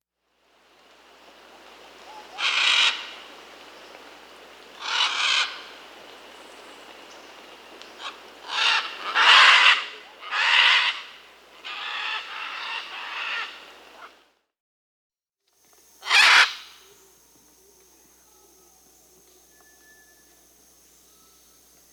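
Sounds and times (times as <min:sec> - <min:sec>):
Scarlet Macaw Ara macao calling in Peru: 0:02.0 - 0:03.2, 0:04.8 - 0:05.8, 0:07.9 - 0:14.1, 0:15.8 - 0:21.9.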